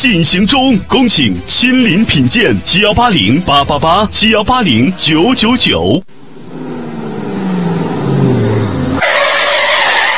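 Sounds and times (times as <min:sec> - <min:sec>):
speech: 0:00.0 - 0:06.2
car engine winding down as it brakes: 0:06.1 - 0:10.1
harsh car tire screech while braking: 0:06.2 - 0:10.1.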